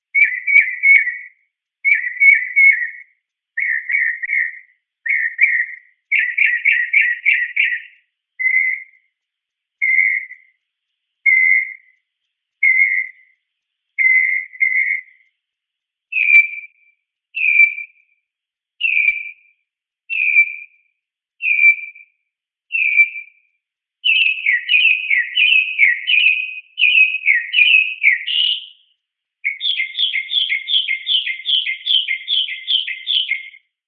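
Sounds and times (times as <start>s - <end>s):
multiple mockingbird calls: 0.0s - 9.0s, 9.8s - 10.5s, 11.3s - 12.0s, 12.6s - 13.3s, 14.0s - 15.2s, 16.1s - 16.7s, 17.4s - 17.9s, 18.8s - 19.4s, 20.1s - 20.7s, 21.4s - 22.0s, 22.7s - 23.3s, 24.0s - 33.6s.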